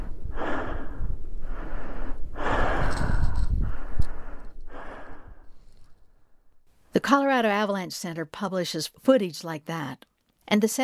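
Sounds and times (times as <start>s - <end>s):
panicked heavy breathing of person filming a snowmobile: 0.0s - 5.7s
speech: 7.0s - 10.8s.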